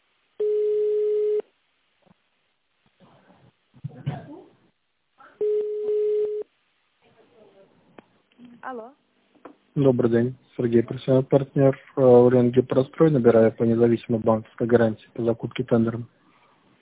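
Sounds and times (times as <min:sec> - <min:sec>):
faint noise: 0:00.0 - 0:16.8
telephone line ringback tone during call transfer to an operator: 0:00.4 - 0:01.4, 0:05.4 - 0:06.4
speech: 0:08.7 - 0:09.0, 0:09.8 - 0:16.2.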